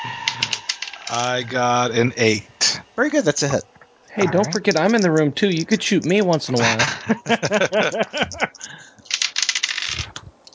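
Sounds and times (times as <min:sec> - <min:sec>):
warbling voice-like sound: 0:00.0 - 0:05.2
speech: 0:01.1 - 0:09.0
laughter: 0:04.2 - 0:08.9
die clattering across a hard surface: 0:09.0 - 0:10.0.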